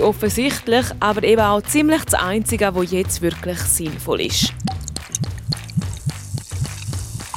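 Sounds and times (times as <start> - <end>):
speech: 0.0 - 4.6
rhythmic glugging pulses: 3.2 - 7.3
water pouring into a vessel in a steady stream: 4.4 - 7.3.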